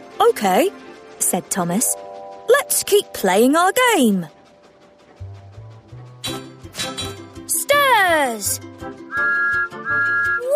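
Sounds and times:
speech: 0.2s - 4.4s, 8.1s - 9.5s
whistle blowing: 9.1s - 10.5s.

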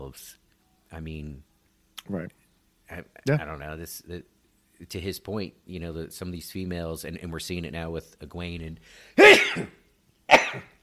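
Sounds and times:
speech: 0.1s - 10.7s
person with sciatica sneezing painfully: 9.2s - 10.8s.

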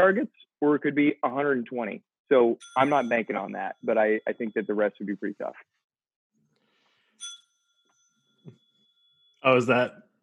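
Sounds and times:
speech: 0.0s - 5.8s, 9.4s - 10.0s
bright bell ding awarding a point: 2.6s - 4.9s, 7.2s - 9.6s.

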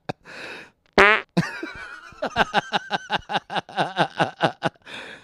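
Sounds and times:
fart sound effects from a soundboard on an old computer: 1.0s - 1.3s
laughter: 1.4s - 4.8s.

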